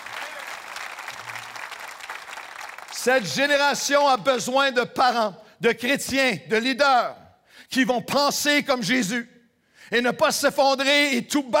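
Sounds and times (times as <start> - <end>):
audience applause at a church gathering: 0.0 - 3.3
speech: 3.0 - 9.3, 9.9 - 11.5.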